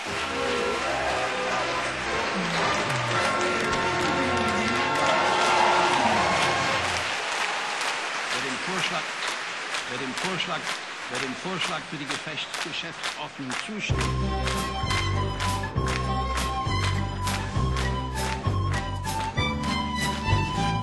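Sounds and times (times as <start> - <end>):
large crowd applauding loudly: 0.0 - 20.8
speech: 10.2 - 14.7.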